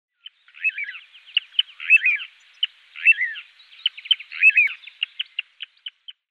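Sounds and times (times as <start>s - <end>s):
little ringed plover Charadrius dubius calling: 0.2s - 6.2s.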